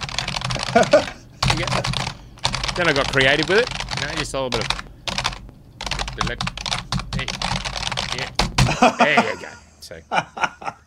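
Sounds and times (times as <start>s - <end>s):
typing on an old computer keyboard: 0.0s - 8.7s
soft chuckling: 0.6s - 1.4s, 8.7s - 10.8s
speech: 0.7s - 1.8s, 2.8s - 4.8s, 6.2s - 6.6s, 8.8s - 10.5s.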